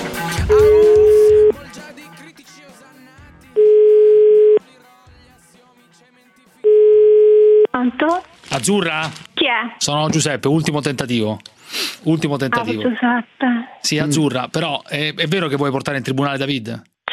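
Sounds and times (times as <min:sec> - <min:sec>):
telephone ringback tone while placing a call: 0:00.5 - 0:01.6, 0:03.6 - 0:04.6, 0:06.7 - 0:07.7
speech: 0:08.6 - 0:16.9.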